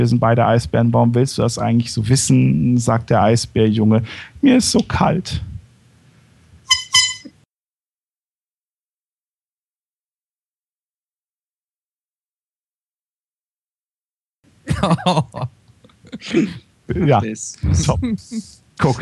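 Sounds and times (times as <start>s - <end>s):
speech: 0.0s - 5.5s, 14.8s - 15.4s, 16.2s - 19.0s
brassy horn honk: 6.7s - 7.3s
laughter: 14.7s - 18.2s.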